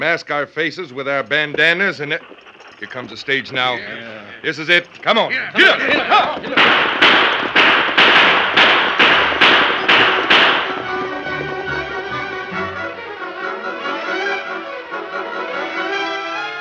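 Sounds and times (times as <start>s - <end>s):
speech: 0.0s - 7.4s
laughter: 2.8s - 7.6s
rapid volley of gunshots during a stagecoach holdup: 5.6s - 10.8s
music: 9.1s - 16.5s.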